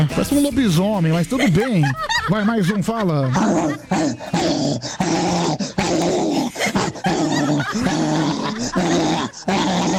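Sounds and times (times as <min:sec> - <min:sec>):
speech: 0:00.2 - 0:07.0, 0:07.7 - 0:09.9
laughter: 0:01.2 - 0:09.9
dog growling and barking frantically: 0:03.4 - 0:09.9.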